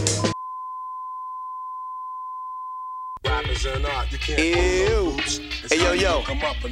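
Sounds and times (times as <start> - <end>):
single-pitched telephone tone before a voicemail message: 0.3 - 3.2
speech: 3.7 - 6.6.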